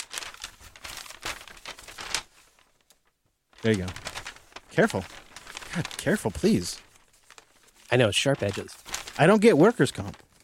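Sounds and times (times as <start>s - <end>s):
large paper map crinkling as it is unfolded: 0.0s - 10.4s
speech: 3.6s - 4.1s, 4.8s - 6.8s, 7.9s - 10.2s.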